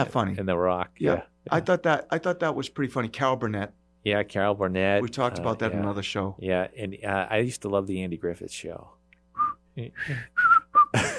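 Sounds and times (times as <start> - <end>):
speech: 0.0 - 9.0, 9.8 - 11.1
person whistling a jaunty TV theme tune: 9.3 - 11.0.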